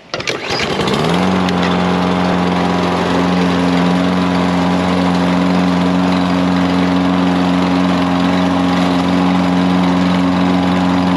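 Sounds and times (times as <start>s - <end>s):
small gas lawn mower pull-start rattle: 0.0s - 1.8s
small gas lawn mower engine running: 0.0s - 11.1s.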